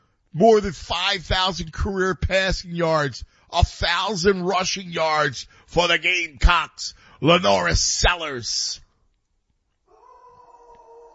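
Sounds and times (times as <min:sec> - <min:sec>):
speech: 0:00.3 - 0:08.8
pet dog howling at home: 0:09.9 - 0:11.1.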